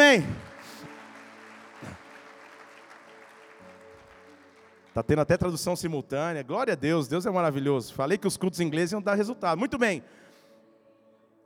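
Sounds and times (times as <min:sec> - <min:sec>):
audience applauding: 0:00.0 - 0:05.6
speech: 0:00.1 - 0:00.4, 0:05.0 - 0:10.2.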